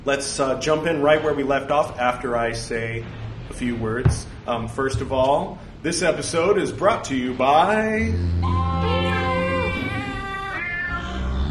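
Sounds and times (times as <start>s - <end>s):
speech: 0.0s - 9.0s
deep steady drone: 2.4s - 11.4s
chorus of meowing cats, bleating goats and a lowing cow singing a slow melody: 6.8s - 11.4s.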